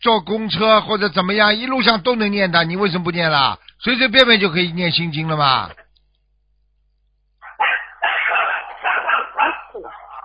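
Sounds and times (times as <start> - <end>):
speech: 0.0 - 5.8
dog kept at home barking: 7.4 - 10.2.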